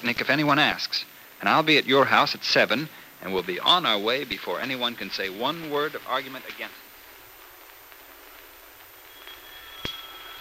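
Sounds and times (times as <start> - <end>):
speech: 0.0 - 6.8
doorbell ringing with a thin metallic tone: 9.1 - 10.3.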